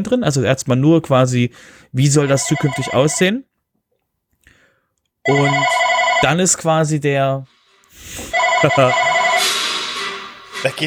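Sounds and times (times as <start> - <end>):
speech: 0.0 - 3.5, 5.3 - 9.1, 10.6 - 10.8
telephone ringing with a bright electronic tone: 2.2 - 3.3, 5.3 - 6.6, 8.3 - 9.6.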